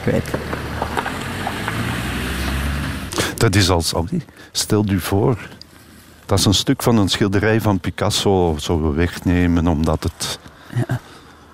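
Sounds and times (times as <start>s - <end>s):
speech: 0.0s - 0.6s, 3.4s - 5.6s, 6.3s - 11.5s
motor vehicle passing by: 0.1s - 3.2s.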